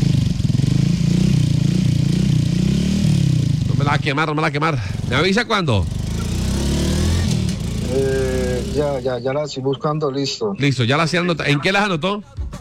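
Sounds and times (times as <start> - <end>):
motorcycle engine starting and idling: 0.0 - 9.6
speech: 3.9 - 6.0, 7.9 - 12.5.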